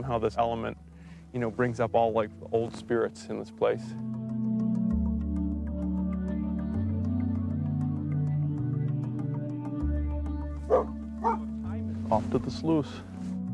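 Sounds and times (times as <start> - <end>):
speech: 0.0 - 4.2, 12.3 - 13.1
low droning musical background: 0.0 - 13.5
dog barking: 10.7 - 11.5.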